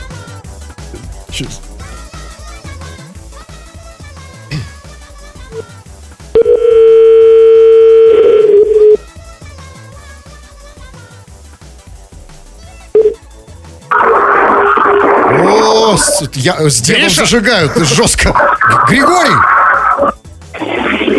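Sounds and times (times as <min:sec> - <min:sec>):
speech: 0:01.4 - 0:01.7, 0:16.2 - 0:20.2
telephone dial tone: 0:06.4 - 0:09.0
burst of noisy crackle: 0:13.9 - 0:16.2, 0:18.4 - 0:21.1.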